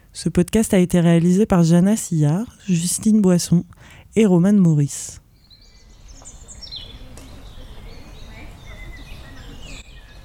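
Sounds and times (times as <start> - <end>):
speech: 0.2 - 5.2
birds chirping and singing in a meadow: 5.4 - 10.2.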